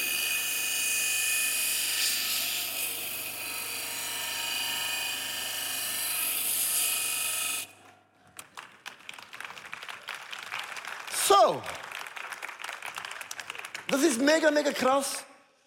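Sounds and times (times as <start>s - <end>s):
power grinder grinding metal, throwing sparks: 0.0s - 7.7s
speech: 11.4s - 11.8s, 13.9s - 15.3s.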